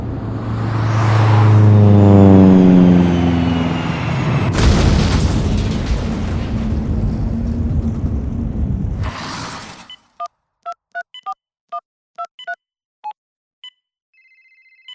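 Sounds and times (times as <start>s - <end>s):
diving plane engine whining: 0.0s - 4.5s
sustained roaring rumble: 1.5s - 9.8s
heavy explosion of a crashing plane: 4.2s - 9.9s.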